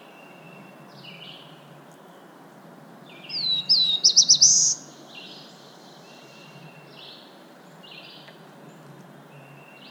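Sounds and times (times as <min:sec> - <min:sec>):
Black-throated blue warbler Setophaga caerulescens song: 0:00.0 - 0:09.8.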